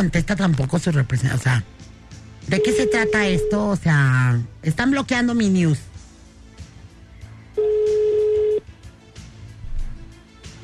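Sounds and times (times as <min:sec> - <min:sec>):
speech: 0:00.0 - 0:01.9, 0:02.5 - 0:05.9
telephone tone while a call is dialed: 0:02.5 - 0:03.7, 0:07.6 - 0:08.6.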